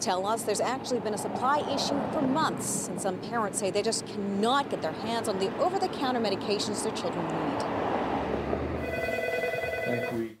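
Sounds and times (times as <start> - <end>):
speech: 0.0 - 7.9
telephone ringing with an electronic trill in a pharmacy: 8.8 - 10.3.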